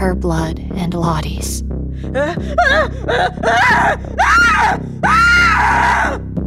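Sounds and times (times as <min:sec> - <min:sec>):
speech: 0:00.1 - 0:06.2
girl screaming and shrieking: 0:02.6 - 0:06.2.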